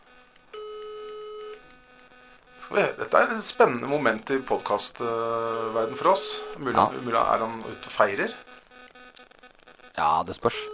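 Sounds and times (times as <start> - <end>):
faint hum: 0.0 - 10.7
electronic phone ringing tone of an outgoing call: 0.5 - 1.6, 3.0 - 8.5
speech: 2.7 - 8.5, 10.0 - 10.7.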